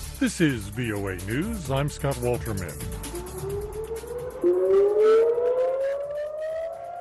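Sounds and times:
speech: 0:00.2 - 0:03.1
warning siren wailing at a border: 0:02.7 - 0:07.0.

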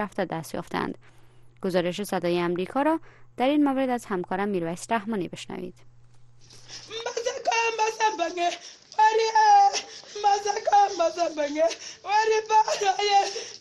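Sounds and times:
speech: 0:00.0 - 0:07.1, 0:07.7 - 0:13.5
62-year-old woman crying and wailing over her son: 0:06.7 - 0:13.5.

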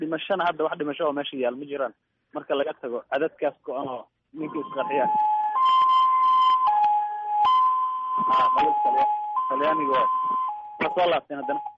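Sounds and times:
speech: 0:00.1 - 0:05.8, 0:08.2 - 0:11.7
ambulance siren wailing in a two-tone pattern: 0:04.4 - 0:11.7.

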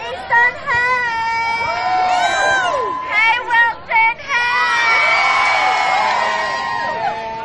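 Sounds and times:
large crowd of high school students shouting and cheering at a protest rally: 0:00.0 - 0:07.4
high-pitched whoops and screams: 0:01.4 - 0:03.4, 0:04.4 - 0:07.4.

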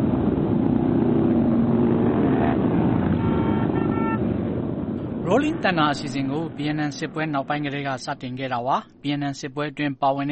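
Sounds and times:
mass ride of thousands of motorcycles rumbling in Washington DC: 0:00.0 - 0:09.5
short horn-like tones: 0:03.2 - 0:04.2
speech: 0:05.3 - 0:10.3.

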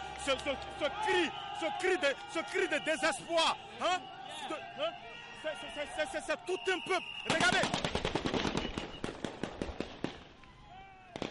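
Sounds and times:
speech: 0:00.2 - 0:08.0
gunfire aimed at protesters: 0:07.3 - 0:10.3, 0:11.1 - 0:11.3.

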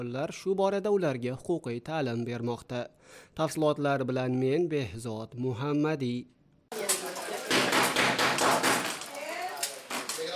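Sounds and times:
speech: 0:00.0 - 0:06.8
knocking on a door during a training session for immigrants: 0:07.5 - 0:09.0.

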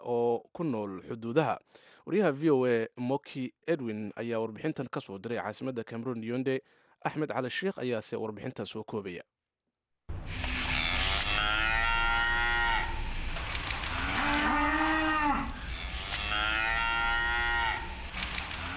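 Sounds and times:
speech: 0:00.0 - 0:09.3
herder's cows lowing along the Vina River in Adamawa, Cameroon: 0:10.5 - 0:13.1, 0:14.0 - 0:18.7.

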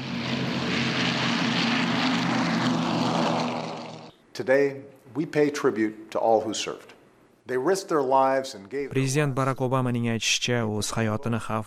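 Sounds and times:
propeller-driven 1940s-era airplanes flying over Washington: 0:00.0 - 0:04.2
speech: 0:04.4 - 0:06.9, 0:07.5 - 0:11.6.

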